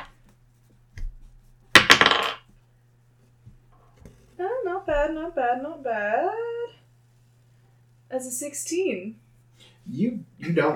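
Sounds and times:
dice rattling and tumbling across a surface during a tabletop role-playing game: 1.8 - 2.4
speech: 4.8 - 6.6, 8.1 - 9.2, 9.8 - 10.7.

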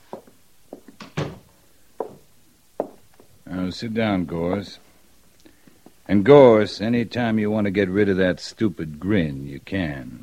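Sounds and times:
office door light knocks: 1.0 - 1.4
speech: 3.6 - 4.8, 6.1 - 10.2.

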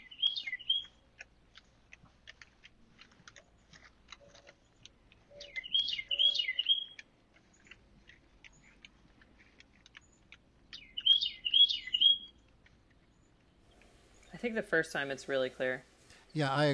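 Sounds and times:
bird singing short high warbling phrases: 0.0 - 1.1, 5.2 - 7.8, 10.0 - 12.5
speech: 14.4 - 16.7.

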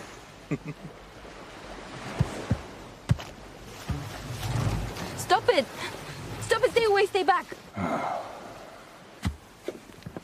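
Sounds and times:
water lapping against a small boat: 0.0 - 10.2
speech: 0.5 - 1.1, 5.3 - 6.0, 6.6 - 8.4
slaps and knocks against a small boat hull: 2.1 - 5.1, 9.2 - 10.2.

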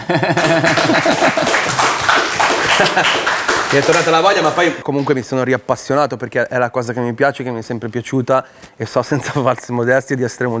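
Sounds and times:
audience applause: 0.0 - 4.8
laughter: 0.0 - 4.8
speech: 0.1 - 1.8, 2.8 - 10.5.

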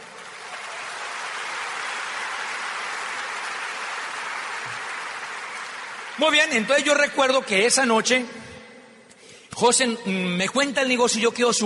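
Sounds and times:
crowd applauding: 0.0 - 7.4
speech: 6.2 - 8.5, 9.6 - 11.6.

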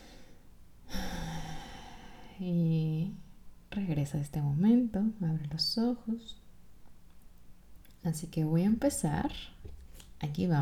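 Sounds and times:
deep breath: 0.0 - 2.4
speech: 2.4 - 3.2, 3.8 - 6.4, 8.0 - 9.6, 10.2 - 10.6.

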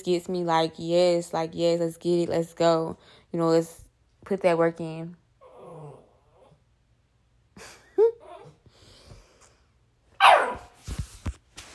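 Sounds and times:
speech: 0.0 - 5.2
dog barking with short sharp yelps: 10.2 - 10.8.

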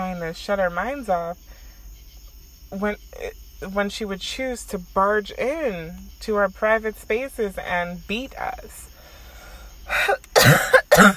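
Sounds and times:
speech: 0.2 - 1.5, 2.7 - 8.9, 9.9 - 11.1
harsh throaty coughs: 9.9 - 11.1.

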